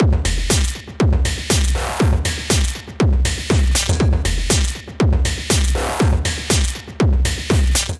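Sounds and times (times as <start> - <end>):
metal work drum kit: 0.0 - 7.9.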